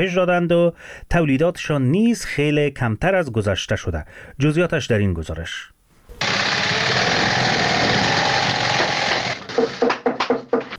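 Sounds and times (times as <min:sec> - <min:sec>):
speech: 0:00.0 - 0:05.7
shoe-sewing machines whirring in a shoe factory in Kabul: 0:06.2 - 0:09.8.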